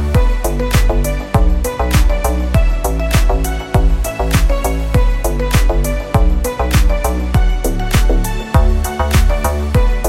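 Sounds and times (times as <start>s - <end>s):
full drum kit loop in G: 0.2s - 10.0s.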